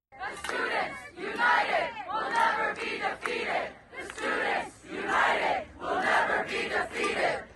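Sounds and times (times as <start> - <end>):
large protest crowd chanting a slogan in unison: 0.1 - 7.5.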